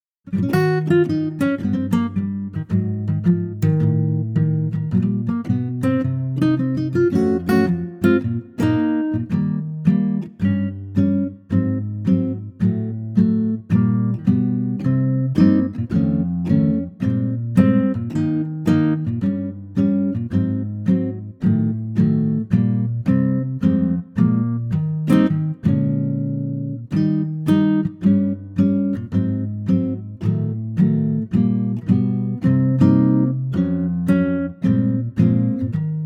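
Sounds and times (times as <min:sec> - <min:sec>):
acoustic guitar arrangement in E flat: 0:00.3 - 0:36.0.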